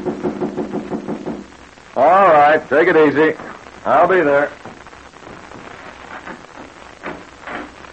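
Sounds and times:
knocking on a door: 0.0 - 1.5, 6.3 - 7.7
speech: 2.0 - 4.6.

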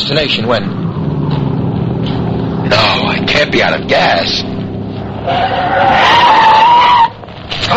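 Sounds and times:
speech: 0.0 - 0.8, 3.0 - 4.5, 5.2 - 6.6
rumbling car engine: 0.0 - 7.7
car tires squealing skidding through a turn: 5.0 - 7.7.

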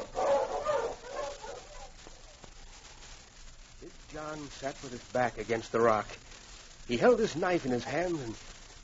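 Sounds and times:
husky dog barking and yipping: 0.0 - 2.5
speech: 4.2 - 6.3, 6.9 - 8.5.

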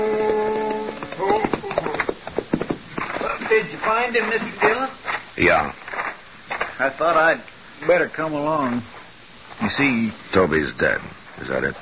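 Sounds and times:
horse hooves clip-clopping as a rider arrives on horseback: 0.0 - 6.8
speech: 3.8 - 5.9, 6.8 - 9.0, 9.6 - 11.8.

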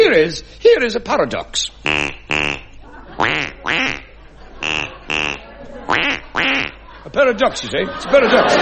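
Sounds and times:
speech: 0.2 - 2.1, 7.2 - 8.6
duck quacking: 1.8 - 6.8
laughter: 2.4 - 8.6.

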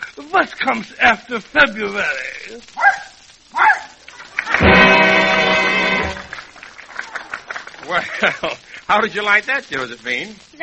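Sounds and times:
speech: 0.3 - 3.1, 7.9 - 10.6
dog yipping: 2.8 - 4.0
laughter: 4.1 - 8.9.

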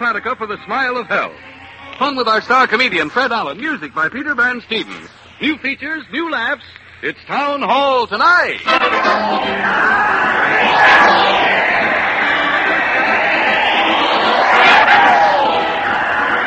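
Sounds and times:
speech: 0.1 - 11.7
large crowd cheering and roaring: 8.7 - 16.4.

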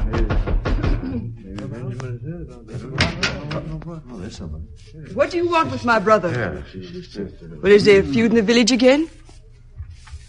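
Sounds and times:
sharp knocks on a house door in a village: 0.0 - 1.2
speech: 4.3 - 9.2.

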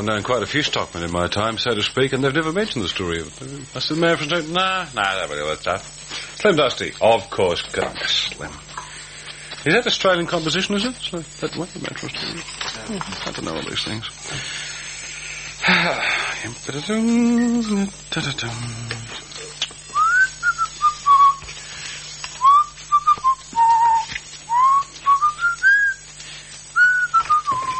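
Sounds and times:
speech: 0.0 - 8.6, 9.6 - 14.7, 15.7 - 19.0
hissy, breathy noise: 0.0 - 27.7
person whistling a melodic tune: 19.9 - 21.5, 22.4 - 26.0, 26.8 - 27.7.

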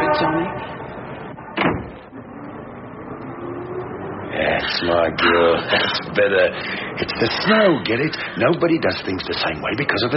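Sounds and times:
car door shutting as people climb in on a snowy day: 1.6 - 2.0
speech: 4.8 - 10.1.

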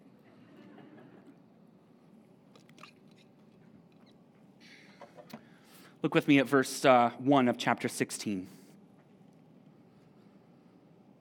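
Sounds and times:
steady low room hum: 0.0 - 11.1
person sipping water: 2.6 - 3.3
speech: 6.0 - 8.6.

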